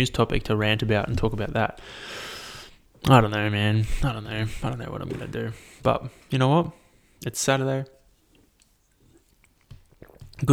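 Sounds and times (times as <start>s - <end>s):
speech: 0.0s - 2.3s, 3.0s - 8.0s
soft mouth smacking: 0.0s - 10.5s
wet mouth sounds of person swallowing: 3.0s - 6.2s, 9.8s - 10.5s.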